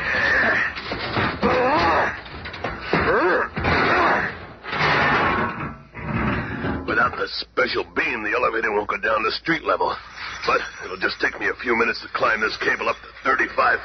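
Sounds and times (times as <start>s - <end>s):
door in a building lobby being smashed in: 0.2s - 7.1s
splintering thuds of a door being smashed: 0.4s - 7.1s
speech: 7.3s - 13.8s.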